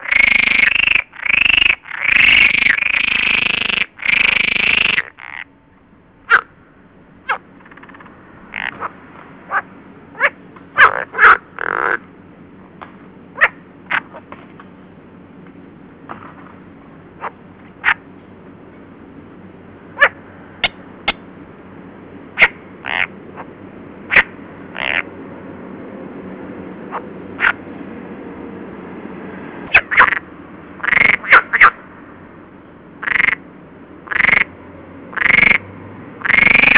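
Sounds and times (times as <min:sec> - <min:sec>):
saharica water frogs calling: 0:00.0 - 0:05.6, 0:06.2 - 0:06.5, 0:07.2 - 0:12.1, 0:13.3 - 0:14.3, 0:17.2 - 0:18.1, 0:19.9 - 0:21.2, 0:22.4 - 0:25.1, 0:26.9 - 0:27.6, 0:29.7 - 0:30.2, 0:30.8 - 0:31.8, 0:33.0 - 0:33.4, 0:34.0 - 0:34.5, 0:35.1 - 0:35.6, 0:36.2 - 0:36.7.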